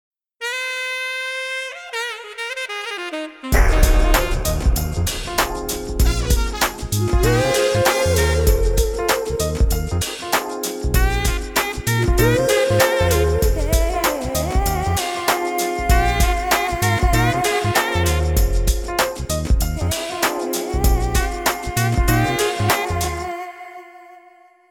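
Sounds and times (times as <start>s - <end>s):
saxophone theme music: 0.4s - 23.6s.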